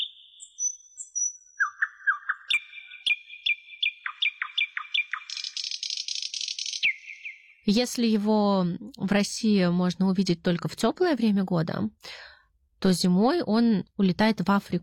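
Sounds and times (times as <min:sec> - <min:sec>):
nightingale singing: 0:00.0 - 0:07.9
speech: 0:07.7 - 0:12.2, 0:12.8 - 0:14.8.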